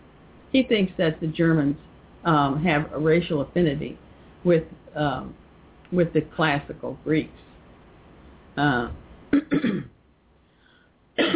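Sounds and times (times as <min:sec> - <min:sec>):
speech: 0:00.5 - 0:07.4, 0:08.6 - 0:10.0
person clearing throat: 0:09.3 - 0:10.0, 0:11.2 - 0:11.3
person coughing: 0:09.4 - 0:09.9, 0:11.2 - 0:11.3.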